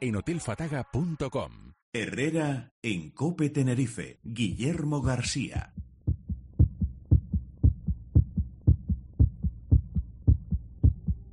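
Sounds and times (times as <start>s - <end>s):
speech: 0.0s - 6.2s
human heartbeat: 4.4s - 11.3s.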